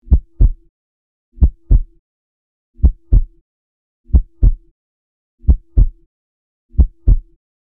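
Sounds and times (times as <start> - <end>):
regular heartbeat through a stethoscope: 0.0 - 0.7, 1.4 - 2.0, 2.8 - 3.4, 4.1 - 4.7, 5.4 - 6.1, 6.7 - 7.4.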